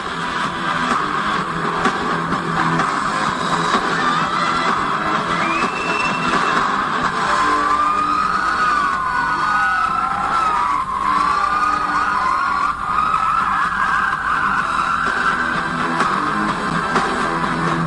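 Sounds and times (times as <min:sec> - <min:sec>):
wrestling show theme music with dense steady backing: 0:00.0 - 0:17.8
wailing sirens in wrestling show theme music: 0:04.0 - 0:16.5.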